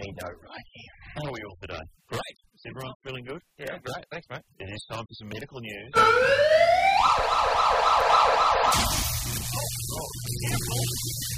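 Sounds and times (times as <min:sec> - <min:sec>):
speech: 0:00.1 - 0:03.2, 0:04.9 - 0:11.3
siren sound effect swooping and yelping: 0:06.0 - 0:08.9.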